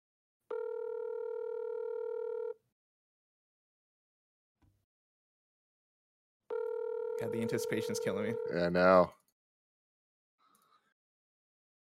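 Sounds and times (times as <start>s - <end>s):
buzzy electronic phone ring tone: 0.5s - 2.6s, 6.5s - 9.0s
speech: 7.2s - 9.2s.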